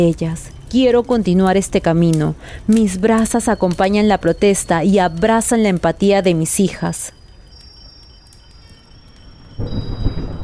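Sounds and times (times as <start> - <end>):
speech: 0.0 - 7.2, 9.6 - 9.9
steady wash of rain: 8.1 - 10.4
deep rumble of thunder: 9.0 - 10.4.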